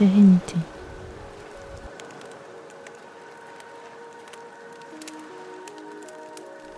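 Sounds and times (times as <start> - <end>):
ocean waves: 0.0 - 6.7
wood fire crackling by the sea: 0.0 - 6.7.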